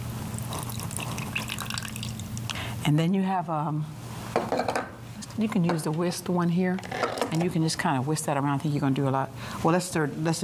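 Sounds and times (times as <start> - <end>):
low steady hum: 0.0 - 10.4
lemon juice trickling into a bowl of turmeric mixture: 0.3 - 2.6
speech: 2.8 - 4.6, 5.4 - 10.4.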